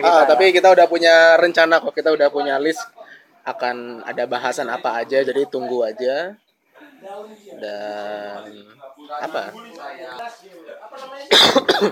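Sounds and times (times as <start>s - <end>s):
speech: 0.0s - 6.4s, 7.0s - 11.8s
person coughing: 11.3s - 11.8s.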